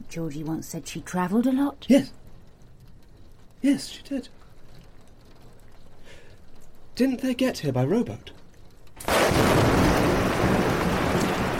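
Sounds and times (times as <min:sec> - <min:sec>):
speech: 0:00.1 - 0:02.2, 0:03.6 - 0:04.4, 0:07.0 - 0:08.4
heavy rain: 0:01.0 - 0:11.5
loud thunderclap: 0:09.0 - 0:11.5.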